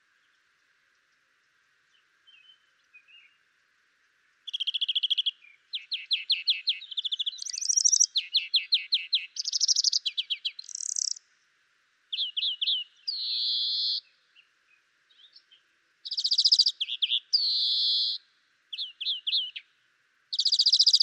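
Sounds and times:
European greenfinch Chloris chloris twittering song with nasal buzzes: 4.5 - 11.2, 12.1 - 14.5, 15.1 - 19.7, 20.3 - 21.0.

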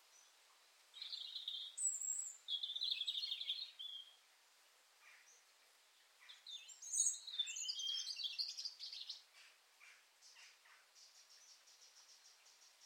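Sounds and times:
European robin Erithacus rubecula singing: 0.0 - 4.3, 5.0 - 12.8
soft hiss: 0.0 - 12.8.

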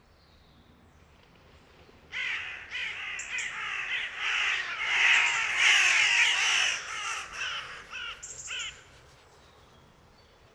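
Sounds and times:
Carrion crow Corvus corone giving harsh hoarse caws: 2.1 - 8.9.

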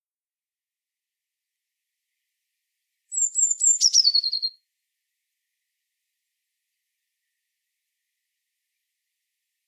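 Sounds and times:
Eurasian blue tit Cyanistes caeruleus giving a sibilant series into a rapid trill: 3.1 - 4.6.

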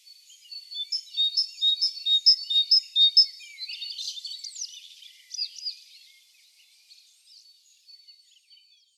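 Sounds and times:
great tit Parus major singing: 0.4 - 5.9.

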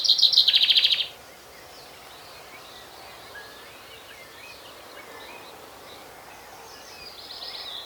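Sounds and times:
Common Chaffinch (Fringilla coelebs) song fragment with bright notes stepping down: 0.0 - 2.6.

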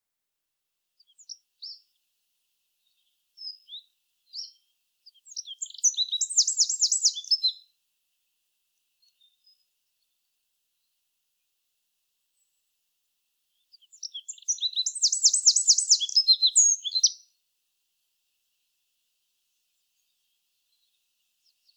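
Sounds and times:
Eurasian wren singing: 1.0 - 2.0, 2.8 - 7.6, 13.5 - 17.3.

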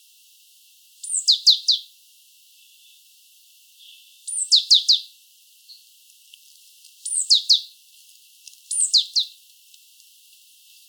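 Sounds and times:
great tit Parus major calls: 1.0 - 1.9, 3.8 - 5.1, 7.0 - 7.7, 8.7 - 9.4.

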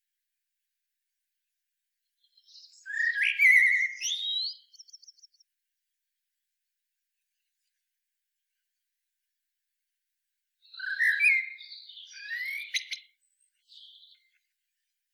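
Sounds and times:
Eurasian blackbird Turdus merula song phrase: 2.0 - 5.6, 10.6 - 15.0.

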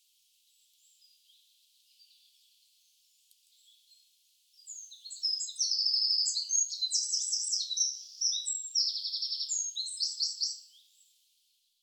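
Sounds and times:
Eurasian wren Troglodytes troglodytes singing: 4.6 - 10.8.

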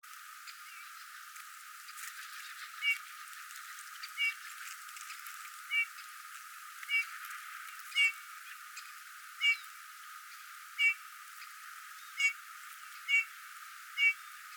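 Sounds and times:
steady background hiss: 0.0 - 14.5
Eurasian bullfinch Pyrrhula pyrrhula piping calls: 9.4 - 9.6, 10.8 - 11.0, 12.2 - 12.4, 13.1 - 13.3, 14.0 - 14.3.

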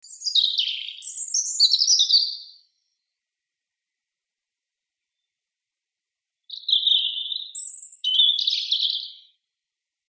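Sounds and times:
European robin twittering, Erithacus rubecula: 0.0 - 2.6, 6.5 - 9.4.

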